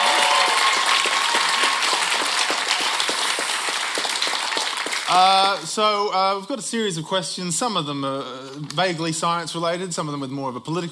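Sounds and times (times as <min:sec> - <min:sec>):
audience applauding quiz contestants: 0:00.0 - 0:05.7
speech: 0:05.1 - 0:10.9.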